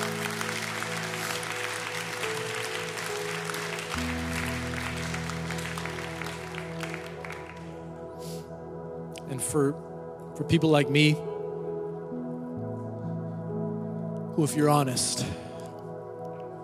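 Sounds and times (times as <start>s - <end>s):
audience applause after a prayer: 0.0s - 7.8s
sustained keyboard chords: 0.0s - 16.6s
speech: 9.4s - 11.3s, 14.4s - 15.4s.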